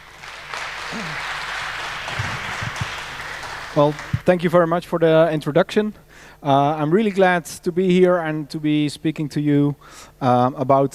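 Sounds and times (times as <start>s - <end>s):
low voices murmuring: 0.0s - 4.2s
room full of people applauding: 0.0s - 4.3s
speech: 0.9s - 1.4s, 3.8s - 10.9s.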